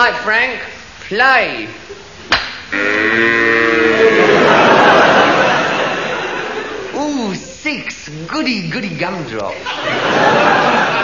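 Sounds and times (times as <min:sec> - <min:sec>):
speech: 0:00.0 - 0:02.1, 0:02.7 - 0:03.4, 0:07.7 - 0:10.9
sharp knock: 0:02.3 - 0:02.7
cow long drawn-out moo breaking into a bellow: 0:02.7 - 0:04.1
laughter: 0:03.8 - 0:07.0, 0:09.6 - 0:11.0.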